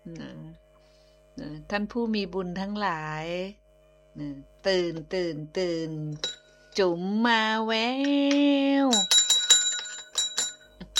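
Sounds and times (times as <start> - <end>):
speech: 1.4 - 3.6, 4.2 - 9.2
small bell ringing: 6.1 - 6.9, 8.8 - 10.9.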